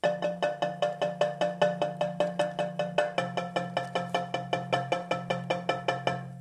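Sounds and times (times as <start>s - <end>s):
marimba transition: 0.0s - 6.3s.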